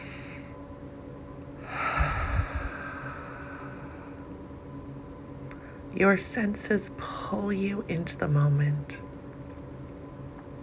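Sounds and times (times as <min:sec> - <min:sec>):
exaggerated audible breathing: 0:01.6 - 0:04.2
speech: 0:06.0 - 0:09.1.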